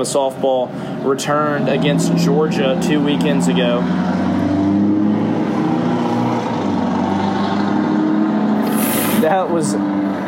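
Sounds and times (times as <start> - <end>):
speech: 0.0 - 4.4, 9.2 - 10.2
loud car exhaust revving: 1.4 - 10.2.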